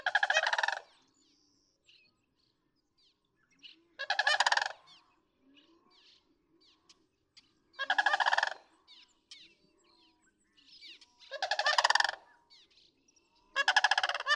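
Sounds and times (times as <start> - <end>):
sandhill crane giving trumpeting rattled calls: 0.0 - 0.9, 4.0 - 4.9, 7.8 - 8.6, 11.2 - 12.2, 13.6 - 14.3
soft scattered bird notes: 0.0 - 14.3.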